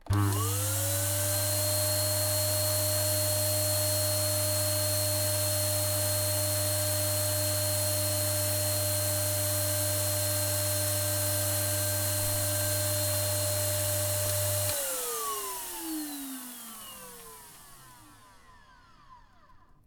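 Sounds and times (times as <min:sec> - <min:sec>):
vacuum cleaner: 0:00.0 - 0:19.8.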